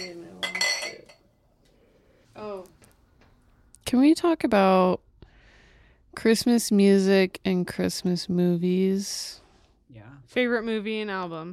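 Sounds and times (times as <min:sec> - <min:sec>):
glasses clinking in a toast: 0:00.0 - 0:01.3
speech: 0:03.9 - 0:05.0, 0:06.2 - 0:11.5.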